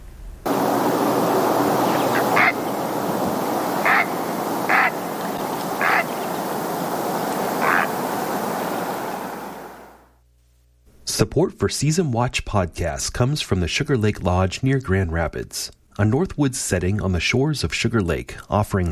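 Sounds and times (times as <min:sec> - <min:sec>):
great blue heron harsh croaking calls: 0:00.5 - 0:09.7
steady wash of surf or wind: 0:00.5 - 0:10.0
speech: 0:11.2 - 0:18.8.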